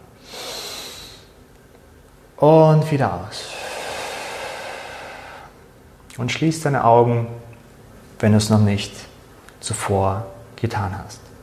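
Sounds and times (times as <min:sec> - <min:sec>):
deep inhale through the nose: 0:00.2 - 0:01.4, 0:03.4 - 0:05.6
speech: 0:02.4 - 0:03.6, 0:06.2 - 0:07.5, 0:08.2 - 0:11.2.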